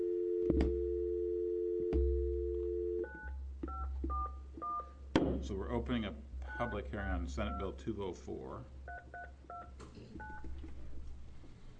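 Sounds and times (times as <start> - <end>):
telephone dial tone: 0.0 - 4.2
telephone dialing beeps at varying pitches: 2.8 - 4.9, 8.9 - 10.5
speech: 5.4 - 8.8.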